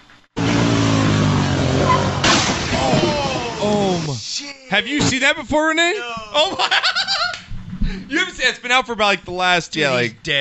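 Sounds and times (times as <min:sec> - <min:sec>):
quad bike engine roaring during a wheelie: 0:00.4 - 0:04.1
quad bike crashing into an oncoming car: 0:00.7 - 0:04.1
speech: 0:04.0 - 0:07.1, 0:07.9 - 0:10.3
laughter: 0:05.9 - 0:07.5.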